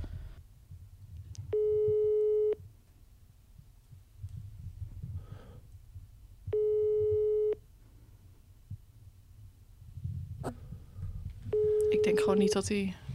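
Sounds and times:
low rumbling hum: 0.0s - 13.1s
unanswered WhatsApp call ringback tone: 1.5s - 2.6s, 6.6s - 7.6s, 11.5s - 12.6s
speech: 12.1s - 13.0s.

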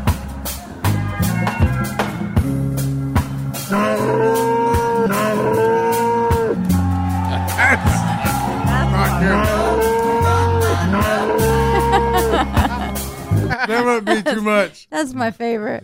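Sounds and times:
loud musical backing with thumping beat and sustained bass notes: 0.1s - 3.7s
drawn-out moo-like lowing calls: 3.6s - 6.6s, 7.2s - 12.4s
laughter: 7.1s - 14.7s
speech: 13.7s - 15.8s.

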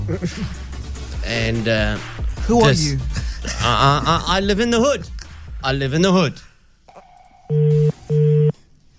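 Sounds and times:
speech: 0.1s - 6.5s, 7.5s - 8.2s
telephone ringback tone while calling: 7.0s - 8.5s.

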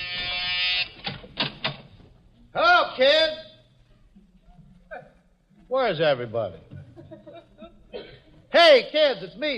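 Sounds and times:
harsh electric front door buzzer: 0.0s - 1.2s
speech: 3.0s - 3.4s, 5.8s - 6.7s, 8.6s - 9.5s
laughter: 6.7s - 8.0s.

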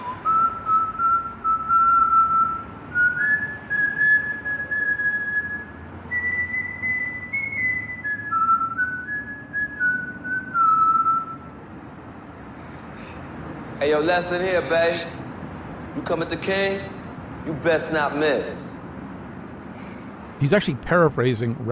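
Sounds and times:
person whistling a wandering tune: 0.0s - 11.5s
dense noisy hum: 0.0s - 21.7s
speech: 13.8s - 15.2s, 16.0s - 18.7s, 20.4s - 21.7s.

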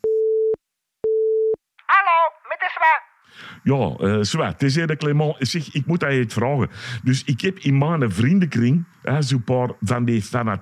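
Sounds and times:
telephone line tone beeps in a recorded phone call: 0.0s - 1.6s
person talking over the phone line: 1.8s - 3.1s
speech: 3.6s - 10.5s.

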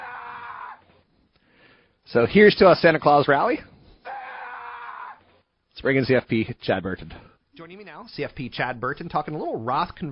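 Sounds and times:
shrill high-pitched cartoon-like elf voice screaming: 0.0s - 0.8s, 4.0s - 5.2s
speech: 2.1s - 3.7s, 5.8s - 10.1s.

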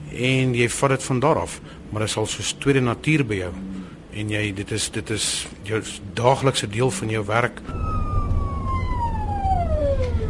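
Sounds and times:
low rumble of traffic: 0.0s - 10.2s
speech: 0.2s - 7.8s
emergency vehicle siren wailing: 7.7s - 10.2s.

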